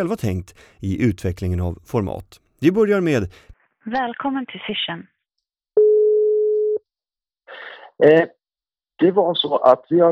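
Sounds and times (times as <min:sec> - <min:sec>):
speech: 0:00.0 - 0:05.1, 0:07.5 - 0:08.4, 0:09.0 - 0:10.1
telephone dial tone: 0:05.8 - 0:06.8.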